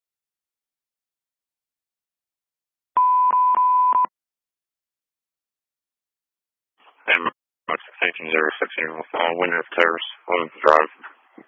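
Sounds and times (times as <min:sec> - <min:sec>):
telephone line tone on incoming phone call: 0:03.0 - 0:04.1
speech: 0:07.1 - 0:11.4.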